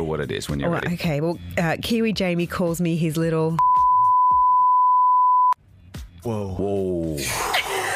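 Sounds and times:
speech: 0.1s - 3.7s, 6.2s - 7.5s
censor bleep from a studio beep button: 3.6s - 5.6s.

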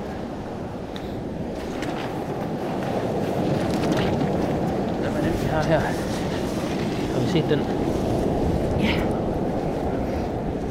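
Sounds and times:
cold wind buffeting the microphone outdoors at the shore: 0.0s - 10.6s
faint brief crackles: 0.9s - 9.2s
speech: 5.7s - 6.0s, 7.3s - 8.0s.

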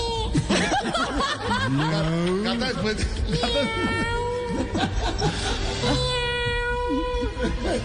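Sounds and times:
laughter: 0.3s - 6.1s, 6.9s - 7.8s
cat meowing: 3.4s - 4.4s, 5.8s - 7.3s.

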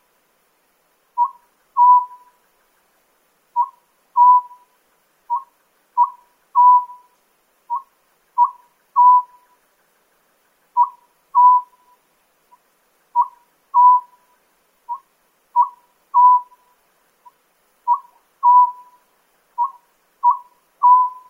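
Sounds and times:
Oriental scops owl calling in Nikko, Tochigi Prefecture, Japan: 1.2s - 2.4s, 3.6s - 9.6s, 10.8s - 12.0s, 13.1s - 21.2s.

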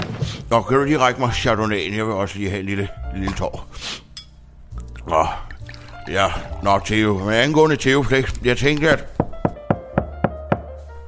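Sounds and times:
speech: 0.5s - 4.0s, 5.0s - 5.4s, 6.1s - 9.2s
firm knocking on a door: 9.2s - 10.7s.

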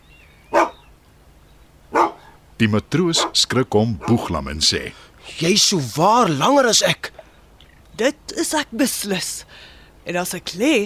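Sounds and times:
large dog barking loudly: 0.5s - 0.8s, 1.9s - 2.4s, 3.1s - 3.4s, 4.0s - 4.3s
speech: 2.6s - 7.1s, 8.0s - 10.8s.

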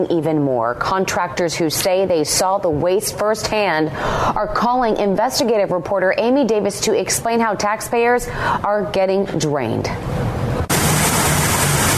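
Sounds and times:
speech: 0.0s - 10.2s
water gushing from a broken city water line: 10.7s - 11.9s.

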